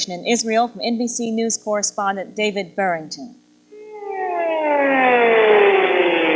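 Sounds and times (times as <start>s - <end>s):
speech: 0.0s - 3.4s
air raid siren in Israel wailing as a real warning during an attack: 3.7s - 6.3s.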